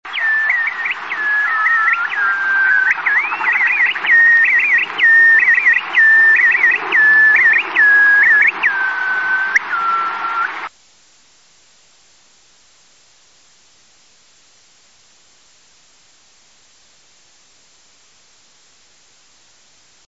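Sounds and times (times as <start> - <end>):
bristle-thighed curlew call: 0.1 - 10.7.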